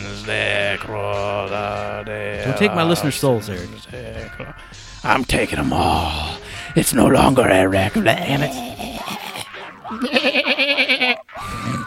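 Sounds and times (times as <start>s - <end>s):
speech: 0.3s - 8.9s
goat letting out a loud drawn-out quavering bleat: 9.9s - 11.3s.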